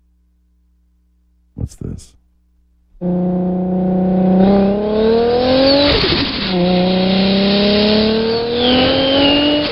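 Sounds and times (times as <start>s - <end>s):
speech: 1.7s - 2.2s, 3.0s - 3.5s
car engine during parking lot maneuvering: 3.0s - 9.7s.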